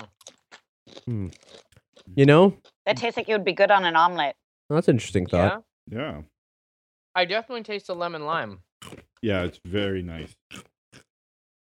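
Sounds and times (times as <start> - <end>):
crunching of stale lemon-lime and garlic flavored chips: 0.0 - 2.1
speech: 1.1 - 6.3, 7.2 - 10.7.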